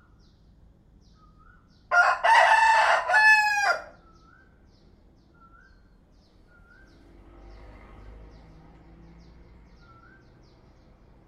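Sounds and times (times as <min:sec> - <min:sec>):
rooster crowing: 0:01.9 - 0:04.1.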